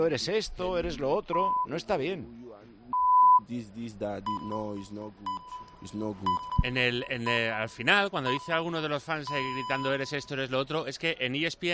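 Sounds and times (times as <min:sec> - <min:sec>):
speech: 0:00.0 - 0:02.5, 0:03.5 - 0:11.7
high-pitched censor bleeps covering insults in an interview: 0:04.3 - 0:04.7, 0:05.3 - 0:08.6, 0:09.3 - 0:10.3.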